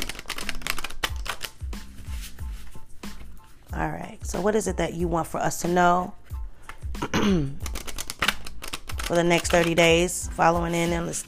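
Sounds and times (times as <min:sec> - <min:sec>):
cards pulled from an oracle card deck: 0:00.0 - 0:03.5, 0:07.6 - 0:09.8
speech: 0:03.8 - 0:06.2, 0:07.0 - 0:07.6, 0:09.1 - 0:11.2.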